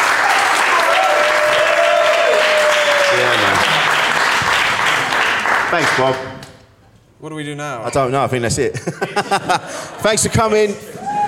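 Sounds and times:
audience applause: 0.0 - 6.4
speech: 5.8 - 6.3, 7.2 - 11.1
laughter: 8.6 - 11.2.

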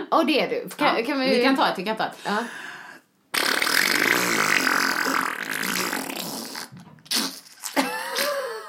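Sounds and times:
speech: 0.1 - 2.7
voice imitating a long wet sputtering fart with the mouth: 3.3 - 8.3.

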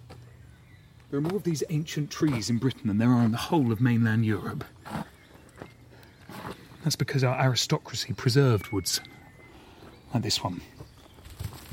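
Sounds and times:
soft footsteps crunching on a woodland floor: 0.0 - 3.8, 4.4 - 6.9, 9.7 - 11.7
faint outdoor background: 0.0 - 11.7
speech: 1.1 - 4.8, 6.8 - 9.2, 10.1 - 10.8.

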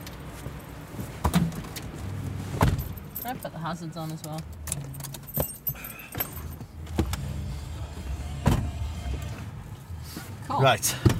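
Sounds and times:
car engine idling before driving away: 1.9 - 11.1
speech: 3.3 - 5.0, 10.6 - 11.1
keys jangling: 4.2 - 6.6.

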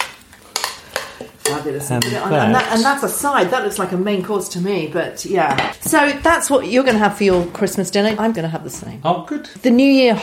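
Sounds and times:
utensil stirring baby spinach through a pan of greens with sesame and chilli: 0.0 - 3.8
speech: 1.2 - 10.2.

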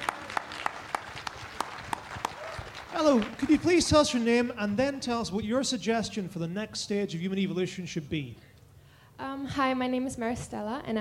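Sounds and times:
audience clapping after a discussion at a live event: 0.0 - 4.6
speech: 3.0 - 8.5, 9.3 - 10.9.

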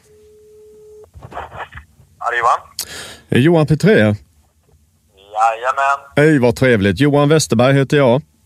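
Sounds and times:
telephone ringing tone on outgoing call: 0.0 - 1.1
speech: 2.2 - 4.3, 5.4 - 8.3.

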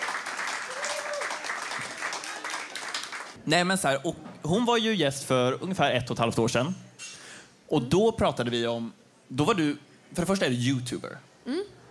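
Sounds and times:
audience applauding a guest: 0.0 - 3.4
speech: 3.5 - 6.9, 7.7 - 11.6.

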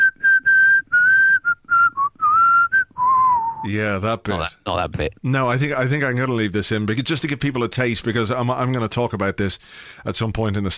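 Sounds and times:
person whistling a lively tune: 0.0 - 3.7
speech: 3.6 - 10.7.

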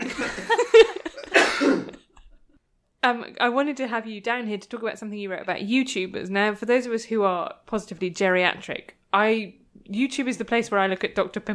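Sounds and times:
laughter: 0.0 - 1.4
person coughing in harsh throaty bursts: 1.0 - 2.2
speech: 3.0 - 11.5.

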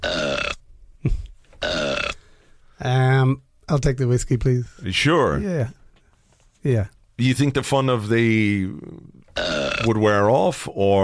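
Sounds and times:
loud burps: 0.0 - 0.6, 1.6 - 2.2, 9.3 - 10.1
speech: 2.8 - 5.8, 6.6 - 11.0.

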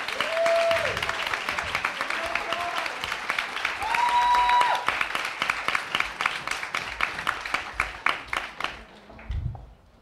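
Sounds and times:
audience cheering with whoops: 0.0 - 5.7
audience applause welcoming panelists at a beauty panel event: 0.0 - 9.0.

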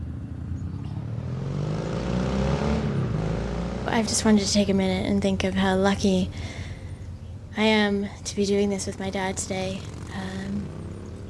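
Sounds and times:
motorcycle engine humming and revving along a street: 0.0 - 5.0, 8.7 - 11.2
speech: 4.0 - 6.6, 7.6 - 10.0.

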